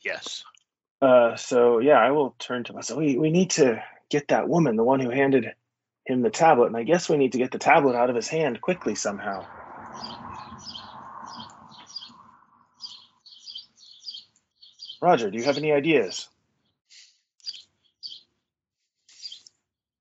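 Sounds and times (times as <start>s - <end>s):
speech: 0.0s - 10.2s, 15.0s - 16.3s
small pet birds chirping and tweeting: 9.3s - 16.2s, 17.4s - 18.3s, 19.1s - 19.5s.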